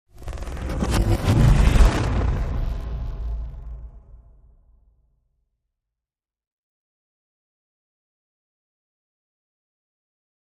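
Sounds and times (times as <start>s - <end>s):
high tech sweep: 0.2s - 4.2s.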